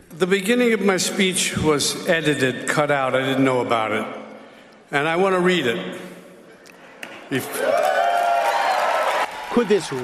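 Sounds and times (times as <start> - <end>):
speech: 0.2 - 4.2, 4.9 - 6.1, 7.3 - 7.9, 9.6 - 10.0
large crowd at a speech cheering and applauding: 7.4 - 10.0.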